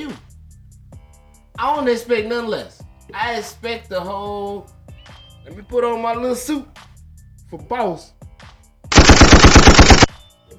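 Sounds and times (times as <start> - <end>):
speech: 1.6 - 4.8, 5.5 - 6.8, 7.5 - 8.2
automatic gunfire: 8.9 - 10.2.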